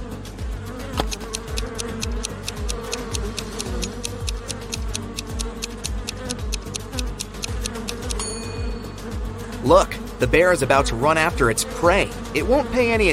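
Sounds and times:
angry swarm of bees buzzing: 0:00.0 - 0:13.1
rapid ticking clicks: 0:01.0 - 0:08.2
speech: 0:09.7 - 0:13.1.

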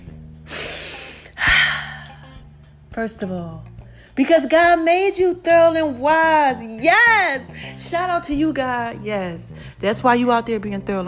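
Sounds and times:
person breathing deeply: 0:00.4 - 0:02.4
speech: 0:03.0 - 0:11.0.

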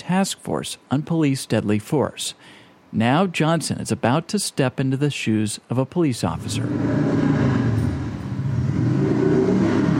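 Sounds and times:
speech: 0:00.1 - 0:07.6
motorcycle engine revving: 0:06.5 - 0:09.9.

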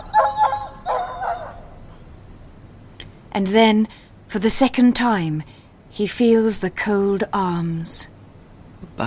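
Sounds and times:
dog howling: 0:00.0 - 0:02.0
speech: 0:03.4 - 0:08.1.

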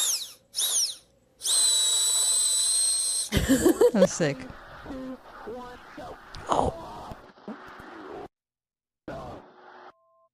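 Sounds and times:
sick person's drill-like wheezing whine: 0:00.0 - 0:03.5
laughter: 0:03.3 - 0:05.8
speech: 0:03.4 - 0:05.6.

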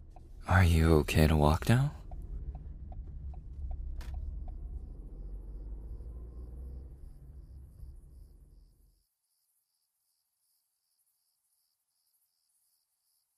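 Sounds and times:
car engine rumbling while parking at a convenience store: 0:00.0 - 0:08.8
speech: 0:00.6 - 0:02.0.

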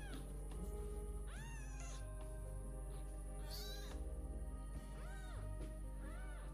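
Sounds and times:
steady low hum: 0:00.0 - 0:06.5
cat meowing: 0:01.3 - 0:02.1, 0:03.4 - 0:04.0, 0:05.0 - 0:06.5.

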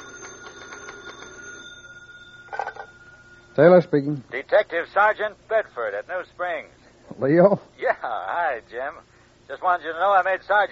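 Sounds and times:
old-style telephone bell ringing in an FBI field office: 0:00.0 - 0:03.8
speech: 0:03.6 - 0:10.7.

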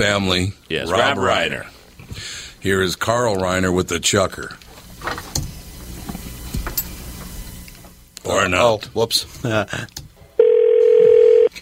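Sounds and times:
speech: 0:00.0 - 0:04.6, 0:08.3 - 0:10.0
telephone dial tone of a phone call being placed: 0:10.4 - 0:11.5.

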